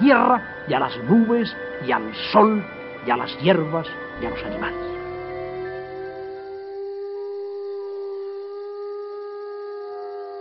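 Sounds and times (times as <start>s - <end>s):
speech: 0.1s - 5.0s
chorus of several wolves howling: 4.2s - 10.3s.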